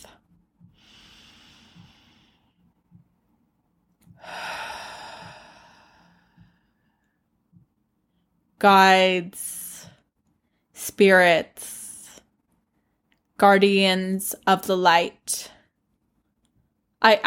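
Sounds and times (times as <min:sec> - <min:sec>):
deep cleansing breath: 0:00.7 - 0:02.7, 0:04.1 - 0:07.0
speech: 0:08.6 - 0:09.6, 0:10.8 - 0:11.8, 0:13.4 - 0:15.6, 0:17.0 - 0:17.2.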